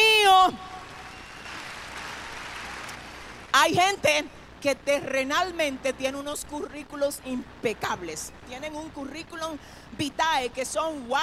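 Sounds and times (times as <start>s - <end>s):
applause of many hands clapping during a sermon: 0.9s - 3.4s
speech: 3.7s - 11.2s.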